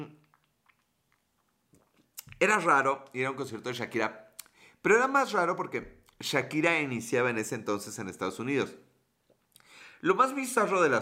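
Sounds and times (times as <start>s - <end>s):
person gulping: 0.0s - 2.4s
person sipping a drink: 0.1s - 2.4s
speech: 2.4s - 4.2s, 4.8s - 8.9s, 10.0s - 11.0s.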